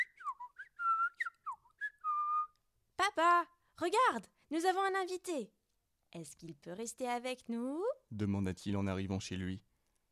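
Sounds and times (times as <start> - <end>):
boy whistling a short tune: 0.0 - 2.6
speech: 3.2 - 9.7.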